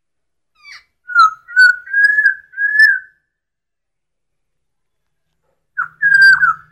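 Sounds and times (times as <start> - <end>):
Masked laughingthrush whistled song during dance display: 0.6 - 3.3, 5.8 - 6.7.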